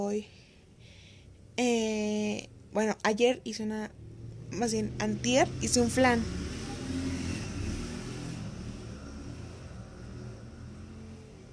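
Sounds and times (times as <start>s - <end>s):
speech: 0.0s - 0.4s, 1.6s - 6.4s
motorcycles passing by outside: 3.9s - 11.5s.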